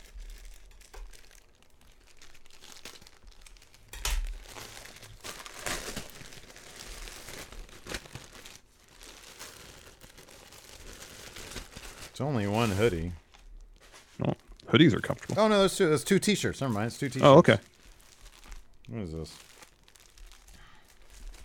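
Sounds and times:
plastic packaging of a mailed parcel crinkling and rustling: 0.0 - 21.4
speech: 12.2 - 13.2, 14.2 - 17.7, 19.2 - 19.5.

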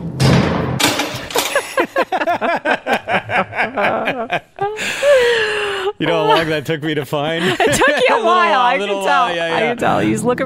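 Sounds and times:
front door slamming shut with a heavy thud: 0.0 - 1.6
laughter: 1.4 - 9.7
speech: 2.3 - 2.8, 6.3 - 10.4.

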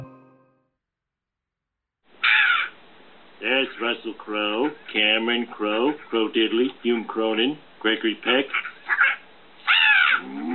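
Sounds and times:
crows cawing in a bedroom: 2.2 - 2.8, 8.5 - 10.4
speech: 3.4 - 8.7.

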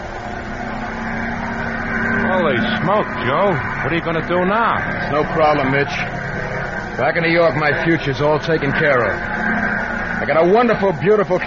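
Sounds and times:
race car engine revving as the car leaves: 0.0 - 11.4
speech: 2.5 - 6.2, 7.0 - 9.4, 10.2 - 11.4.

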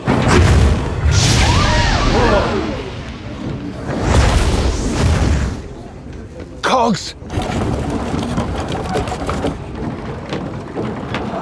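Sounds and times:
fireworks booming: 0.0 - 6.6
constant roar: 0.0 - 10.3
wavering whistle-like tones: 1.1 - 4.5
speech: 6.9 - 7.2.

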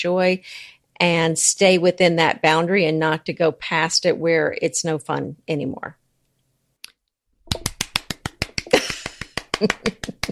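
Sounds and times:
speech: 0.0 - 6.0, 9.6 - 10.2
steady hand clapping: 7.5 - 10.3.

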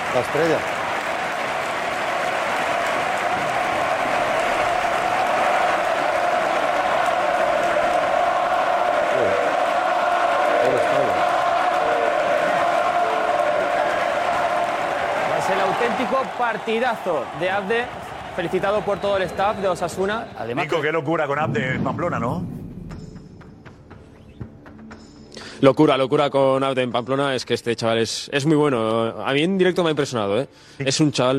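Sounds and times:
large stadium crowd giving an ovation with applause: 0.0 - 21.0
speech: 0.1 - 0.8, 16.2 - 22.5, 25.6 - 31.3.

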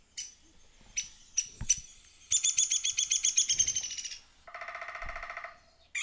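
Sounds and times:
woodpecker sound effect with chirps and trill: 2.3 - 6.0.

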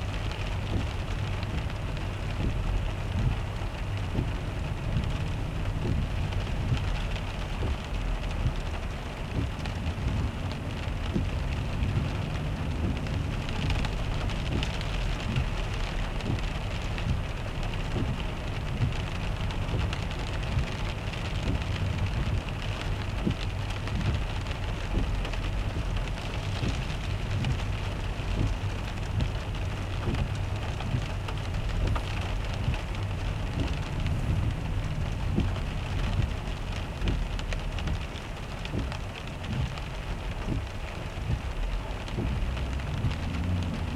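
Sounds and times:
deep rumble from the road: 0.0 - 43.9
rain drumming on a car roof: 0.0 - 43.9.

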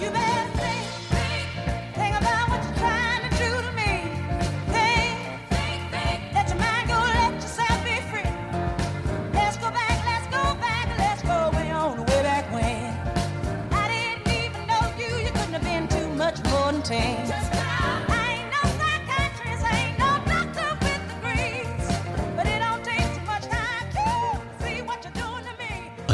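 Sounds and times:
woman singing soul with a raspy growl: 0.0 - 8.6, 9.3 - 26.0.

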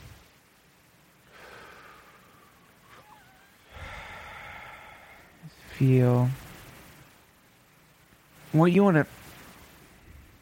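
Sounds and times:
person taking a big deep breath: 1.3 - 2.7, 3.6 - 5.4
speech: 5.8 - 6.4, 8.5 - 9.2.

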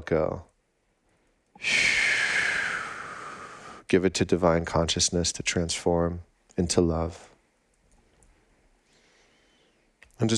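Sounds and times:
speech: 0.1 - 0.5, 1.6 - 1.9, 3.9 - 7.3, 10.2 - 10.3
long deep breath: 1.2 - 3.9, 8.8 - 9.9.

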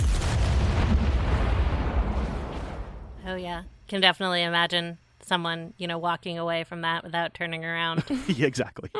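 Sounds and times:
loud deep explosion with low rumble: 0.0 - 3.8
speech: 3.3 - 8.9.

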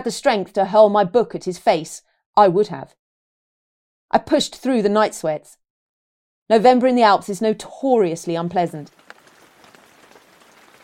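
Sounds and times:
speech: 0.0 - 3.0, 4.1 - 5.6, 6.5 - 9.0
steady rain: 8.9 - 10.8.

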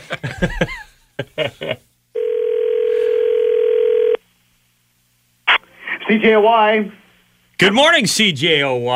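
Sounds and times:
speech: 0.1 - 1.8, 6.1 - 7.0, 7.6 - 8.9
telephone ringback tone as a call is placed: 2.2 - 4.2
voice answering phone: 2.2 - 4.2.

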